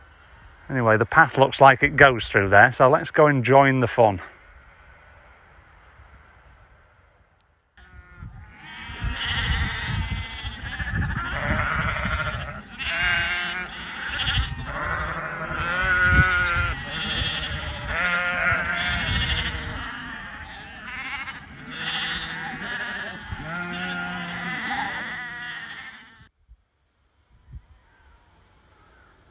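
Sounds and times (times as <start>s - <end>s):
speech: 0.7s - 4.3s
large flock of sheep bleating excitedly: 7.8s - 26.3s.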